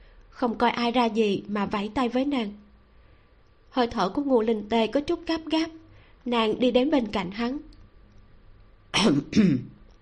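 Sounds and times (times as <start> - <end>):
speech: 0.4 - 2.6, 3.7 - 7.7, 8.9 - 9.7
dry coughs in a hall: 9.0 - 9.8.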